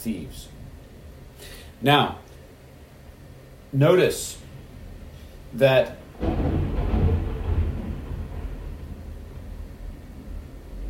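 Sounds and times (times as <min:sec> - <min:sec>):
speech: 0:00.0 - 0:00.6, 0:01.4 - 0:02.2, 0:03.7 - 0:04.4, 0:05.5 - 0:06.5
thunder rumbling: 0:06.0 - 0:10.8.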